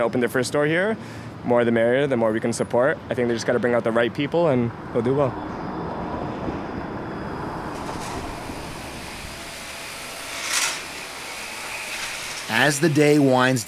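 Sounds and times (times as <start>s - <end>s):
speech: 0.0s - 5.6s, 12.6s - 13.6s
vacuum cleaner running in a retail store: 7.4s - 13.2s.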